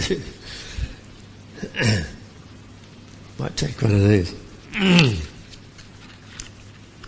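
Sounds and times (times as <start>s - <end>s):
speech: 0.1s - 0.4s, 1.6s - 2.2s, 3.4s - 5.3s
throat-clearing bursts like a suppressed cough: 1.6s - 2.2s, 4.7s - 5.4s.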